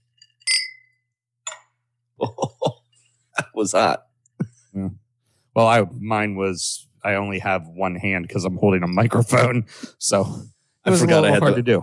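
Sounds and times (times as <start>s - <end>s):
wine glasses clinking in a toast: 0.0s - 1.7s, 8.8s - 9.5s
laughter: 2.2s - 2.8s, 3.4s - 3.7s, 10.9s - 11.8s
speech: 3.6s - 4.1s, 5.6s - 11.8s.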